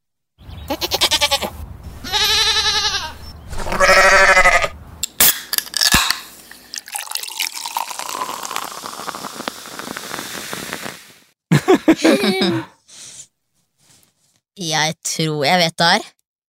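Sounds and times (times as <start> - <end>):
billy goats bleating: 0.7 - 4.7
rain or dripping water: 6.4 - 9.1
laughter: 11.5 - 12.7
speech: 12.0 - 12.7, 14.8 - 16.2.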